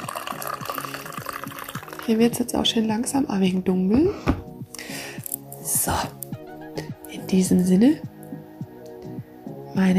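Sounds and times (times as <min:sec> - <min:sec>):
tea pouring into a cup: 0:00.0 - 0:02.5
speech: 0:02.1 - 0:04.4, 0:07.3 - 0:08.1, 0:09.8 - 0:09.9.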